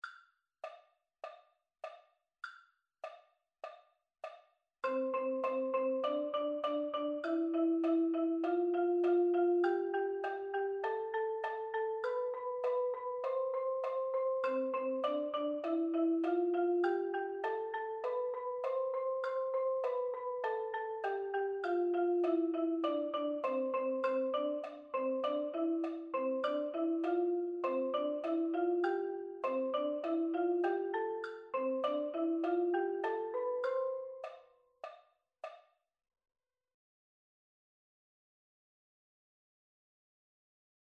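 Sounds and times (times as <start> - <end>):
mallet percussion: 3.0 - 35.6.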